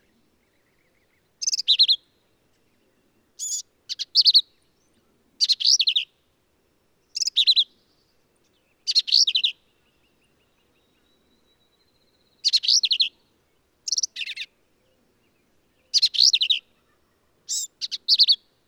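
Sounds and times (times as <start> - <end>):
black-capped vireo song: 0.0 - 6.4, 7.0 - 18.6.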